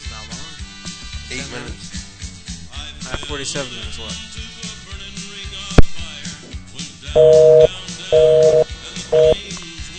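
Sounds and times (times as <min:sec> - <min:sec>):
speech: 0:01.3 - 0:02.0, 0:03.1 - 0:04.4, 0:07.1 - 0:09.4
telephone busy signal: 0:07.2 - 0:09.4.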